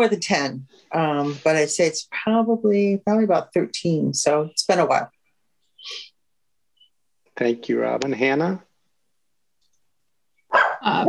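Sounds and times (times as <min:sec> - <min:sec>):
speech: 0:00.0 - 0:05.2, 0:05.8 - 0:06.1, 0:07.4 - 0:08.7, 0:10.8 - 0:11.0
dog barking: 0:10.5 - 0:11.0.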